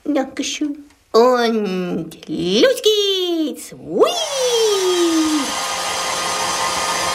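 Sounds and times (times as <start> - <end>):
speech: 0.2 - 5.6
hair dryer blowing while drying a person's hair: 4.6 - 7.1.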